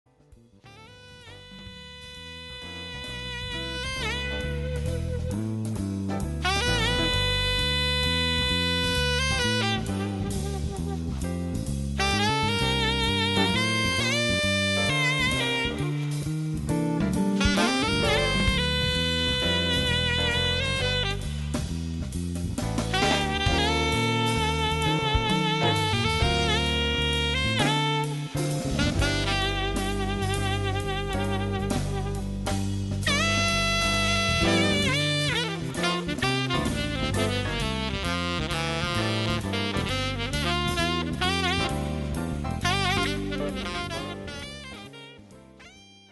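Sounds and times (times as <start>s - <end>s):
solo saxophone: 0.7s - 46.1s.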